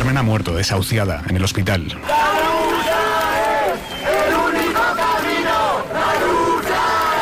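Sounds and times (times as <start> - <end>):
speech: 0.2 - 2.7
crowd shouting in a city square at night: 2.0 - 7.2.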